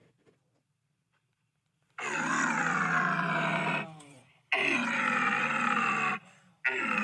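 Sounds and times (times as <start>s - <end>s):
lion-like roars blasted through an extending three-part bugle-like tube: 2.0s - 7.0s.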